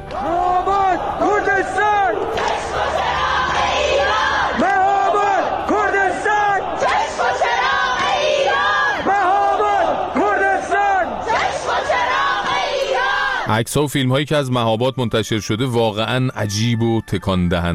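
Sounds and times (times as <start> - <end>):
large crowd chanting protest slogans in Chitgar township Tehran Iran: 0.0 - 13.5
speech: 13.5 - 17.7.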